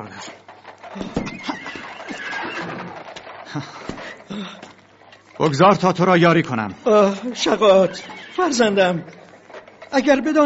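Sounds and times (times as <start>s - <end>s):
speech: 0.0s - 1.6s, 3.5s - 3.8s, 5.4s - 9.2s, 9.9s - 10.4s
horse whinnying in a long wavering high call: 0.7s - 4.3s, 7.3s - 9.4s.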